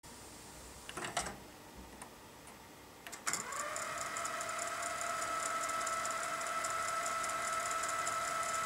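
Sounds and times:
cassette tape rewinding in a tape recorder: 0:03.3 - 0:08.6.

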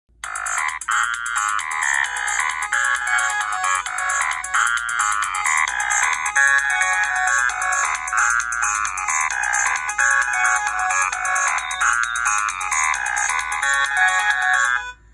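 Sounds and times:
Motorola ROKR E1 mobile phone sound: 0:00.2 - 0:15.1.

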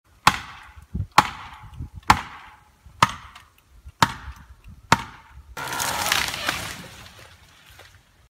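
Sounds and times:
axe striking wood: 0:00.2 - 0:06.4
something falling: 0:05.6 - 0:07.4.

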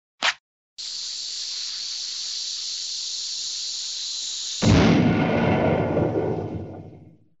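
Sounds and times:
fuse burning: 0:00.8 - 0:06.8
explosion: 0:04.6 - 0:07.3.

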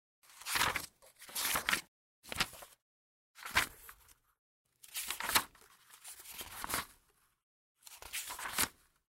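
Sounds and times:
pages turning: 0:00.3 - 0:02.8, 0:03.4 - 0:04.2, 0:04.8 - 0:07.0, 0:07.8 - 0:09.0.

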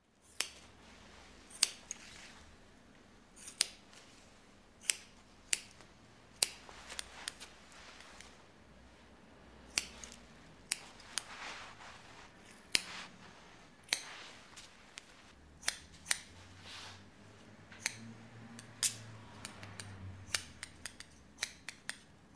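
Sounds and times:
scissors cutting hair: 0:00.2 - 0:00.8, 0:01.5 - 0:02.3, 0:03.4 - 0:04.0, 0:04.8 - 0:08.4, 0:09.7 - 0:13.1, 0:13.8 - 0:16.4, 0:17.7 - 0:22.3.

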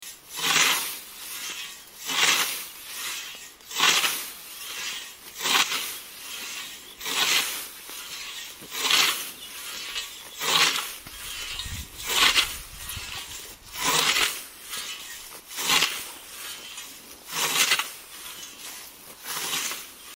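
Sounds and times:
scythe: 0:00.0 - 0:20.1.

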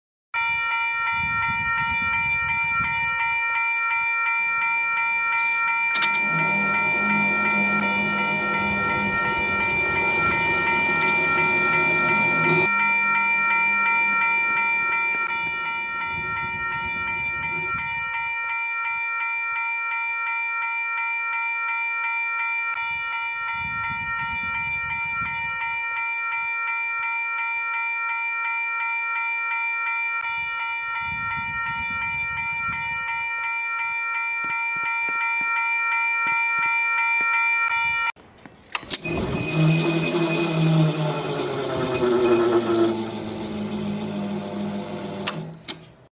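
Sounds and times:
railway level crossing bell: 0:00.4 - 0:38.2, 0:38.8 - 0:46.1
railway crossing barrier moving: 0:05.4 - 0:17.9, 0:38.6 - 0:46.1.

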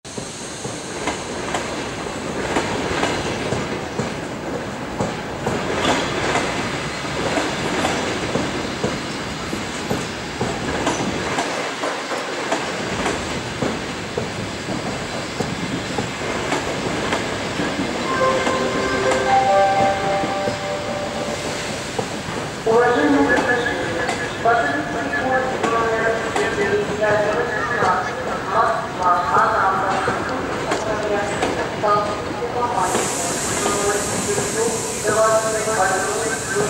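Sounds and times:
railway station noise: 0:00.0 - 0:36.6.

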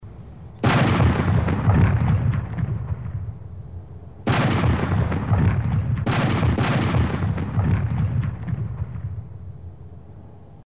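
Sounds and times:
cannon firing: 0:00.6 - 0:03.6, 0:04.2 - 0:09.5.

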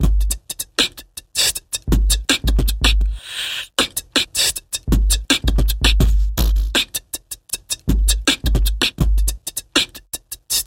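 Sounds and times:
beatboxing: 0:00.0 - 0:10.6.

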